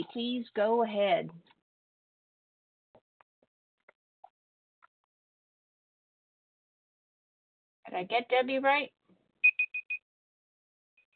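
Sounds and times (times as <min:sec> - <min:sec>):
speech: 0:00.0 - 0:01.6, 0:07.9 - 0:09.0
timer beeping: 0:09.4 - 0:10.0.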